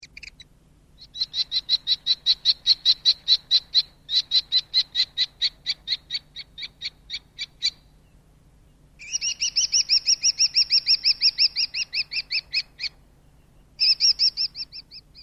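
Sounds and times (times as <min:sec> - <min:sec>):
kestrel calling: 0:00.0 - 0:15.2.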